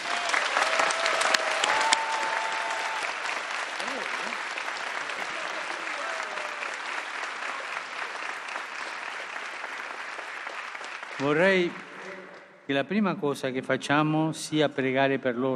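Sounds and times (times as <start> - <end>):
large crowd applause: 0.0 - 12.4
speech: 11.2 - 11.8, 12.7 - 15.5.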